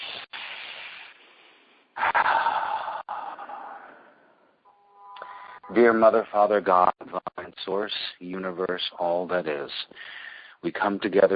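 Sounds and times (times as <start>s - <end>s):
deep breath taken before a group prayer: 0.0s - 4.6s, 5.2s - 5.7s, 9.9s - 10.6s
speech: 5.7s - 11.3s.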